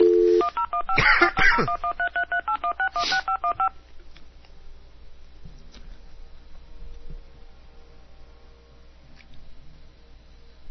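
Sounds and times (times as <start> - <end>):
noise: 0.0 - 10.7
telephone keypad dialing tones: 1.8 - 3.7.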